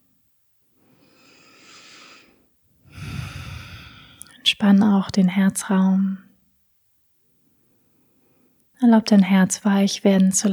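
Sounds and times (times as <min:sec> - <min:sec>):
person deep breathing in and out during a relaxation breathing exercise: 0:00.9 - 0:04.4
speech: 0:04.5 - 0:06.3, 0:08.8 - 0:10.5.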